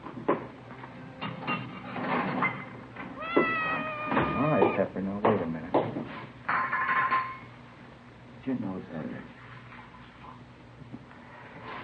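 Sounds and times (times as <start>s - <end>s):
faint hum: 0.0s - 11.8s
Siamese cat meowing for food: 3.1s - 5.0s
speech: 8.5s - 9.4s.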